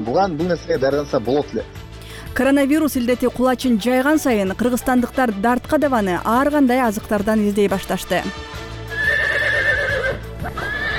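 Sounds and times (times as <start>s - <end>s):
speech: 0.0s - 8.6s
horse neighing in At-Bashy district, Kyrgyzstan: 8.9s - 10.9s.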